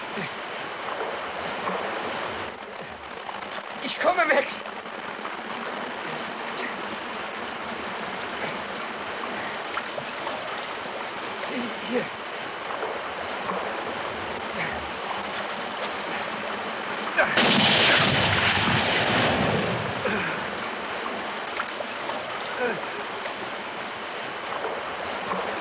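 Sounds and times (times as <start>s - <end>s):
noisy background: 0.0s - 25.5s
speech: 0.2s - 0.4s, 3.8s - 4.8s, 11.9s - 12.2s
gunshot: 17.2s - 20.4s.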